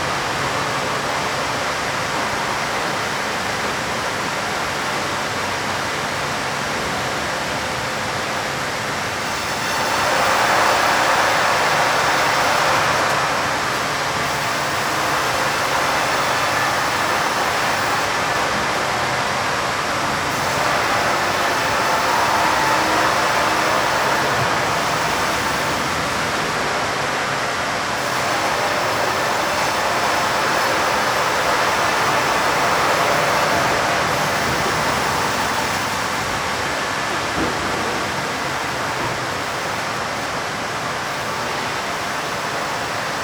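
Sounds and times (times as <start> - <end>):
mulching room ambience: 0.0 - 43.2.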